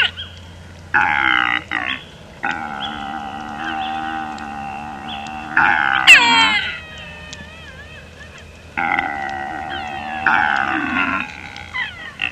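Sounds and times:
Père David's deer uttering long rough wailing calls: 0.9s - 12.3s
Père David's deer brief sharp squeal: 2.5s - 12.3s.

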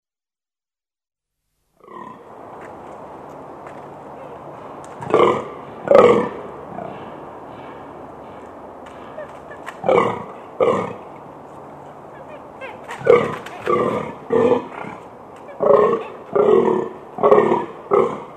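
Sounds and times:
Fallow deer uttering low burping groans: 4.1s - 18.3s.

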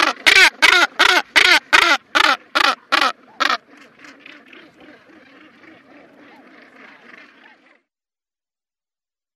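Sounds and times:
northern gannet loud rasping croaks: 0.0s - 7.7s.

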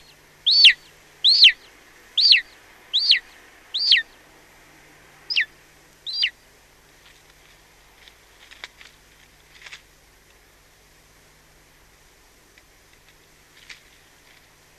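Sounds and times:
golden eagle giving high down-slurred yelps: 0.0s - 4.1s, 5.3s - 6.4s
soft background hiss: 0.0s - 14.7s.

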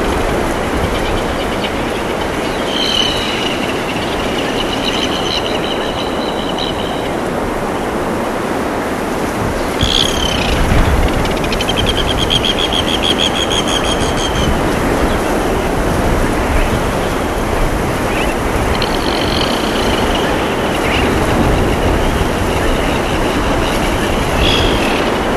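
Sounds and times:
loud constant broadband roar: 0.0s - 25.3s
red-billed tropicbird shrill buzzy rattling calls: 0.1s - 7.3s, 9.7s - 15.2s, 18.0s - 25.3s.

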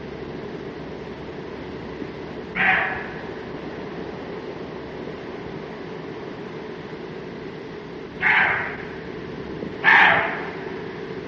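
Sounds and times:
roe deer barking: 2.6s - 3.4s, 8.2s - 9.0s, 9.8s - 10.8s.

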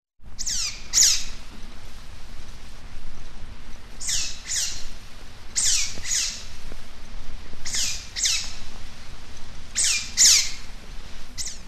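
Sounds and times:
faint low rumble: 0.2s - 11.6s
Eurasian otter squeaking calls: 0.4s - 1.3s, 4.0s - 4.9s, 5.6s - 6.5s, 7.6s - 8.6s, 9.8s - 10.6s, 11.4s - 11.6s.

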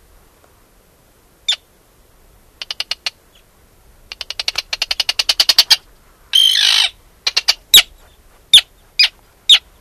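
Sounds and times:
Arctic tern chattering, screeching and calling: 1.4s - 1.8s, 2.5s - 9.7s.

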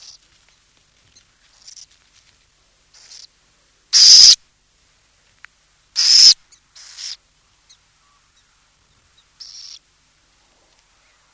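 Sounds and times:
Burrowing owl uttering loud hissing screech notes: 4.0s - 4.4s, 6.0s - 7.2s.

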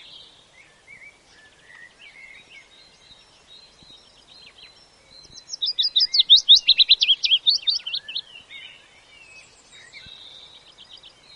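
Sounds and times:
willow warbler song: 0.0s - 11.3s.

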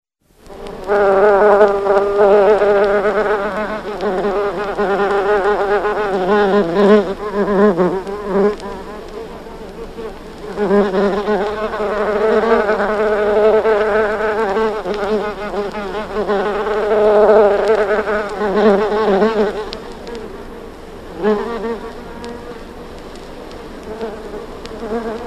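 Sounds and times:
bumblebee buzzing: 0.5s - 25.2s
speech: 0.9s - 1.8s.

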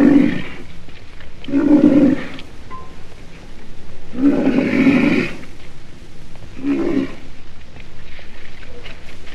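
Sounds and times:
black rhinoceros growling: 0.0s - 0.8s, 1.4s - 2.5s, 4.0s - 5.6s, 6.5s - 7.4s.

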